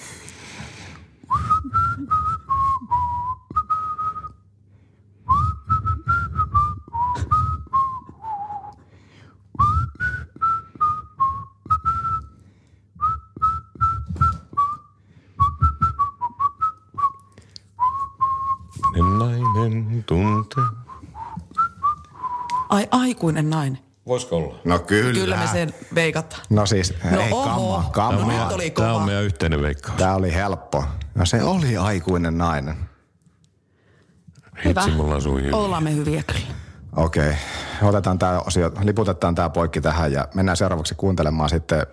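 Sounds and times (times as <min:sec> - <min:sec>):
person whistling a tune: 0:01.3 - 0:04.5, 0:05.2 - 0:08.9, 0:09.5 - 0:22.7, 0:34.7 - 0:35.0
speech: 0:23.0 - 0:32.9, 0:34.6 - 0:41.9.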